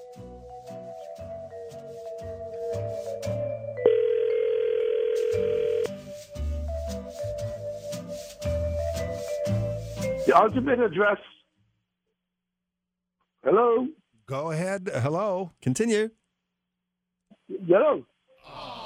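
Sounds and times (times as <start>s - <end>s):
music: 0.0s - 4.5s, 5.1s - 11.2s
telephone dial tone: 3.8s - 5.9s
speech: 10.3s - 11.3s, 14.8s - 16.2s, 17.6s - 18.1s.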